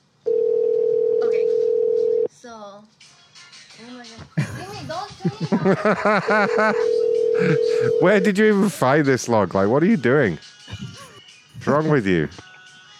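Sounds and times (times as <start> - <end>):
telephone ringing tone: 0.3 - 2.3, 6.5 - 8.5
speech: 3.8 - 10.5, 11.6 - 12.5
laughter: 4.4 - 8.8, 10.7 - 12.4.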